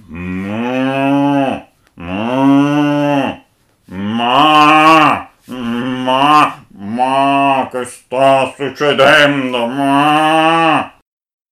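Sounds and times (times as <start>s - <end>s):
cow passing by mooing loudly: 0.0s - 7.7s, 9.5s - 11.0s
speech: 7.8s - 10.9s.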